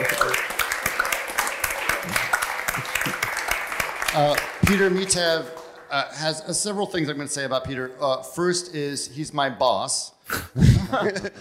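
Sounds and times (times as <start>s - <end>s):
crowd applauding: 0.0s - 6.4s
speech: 4.2s - 11.3s
laughter: 10.6s - 11.3s.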